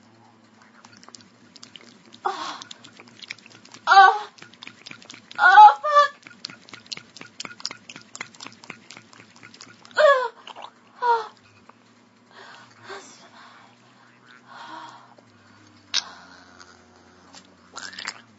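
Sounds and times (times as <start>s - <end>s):
vibrator churning and splashing in liquid: 0.6s - 10.7s
short breathy vocal moans: 2.2s - 4.5s, 5.2s - 6.3s, 9.8s - 11.4s, 12.3s - 18.1s.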